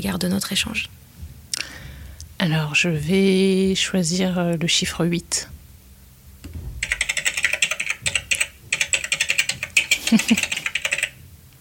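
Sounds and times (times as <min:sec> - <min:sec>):
speech: 0:00.0 - 0:01.1, 0:02.4 - 0:05.6, 0:10.1 - 0:10.5
rapid clicking of keys on a computer keyboard: 0:06.8 - 0:11.2.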